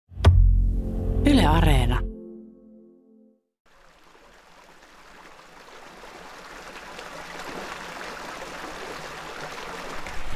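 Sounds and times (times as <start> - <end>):
brief tonal snippet: 0.2 - 3.4
speech: 1.5 - 2.1.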